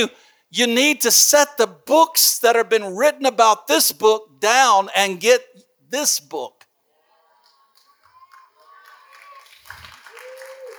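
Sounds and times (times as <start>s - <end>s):
speech: 0.0s - 6.6s
audience applause during a sermon: 7.4s - 10.7s.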